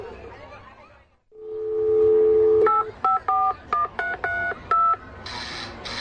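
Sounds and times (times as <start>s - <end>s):
touch-tone telephone beeps as a number is dialed: 1.7s - 5.0s.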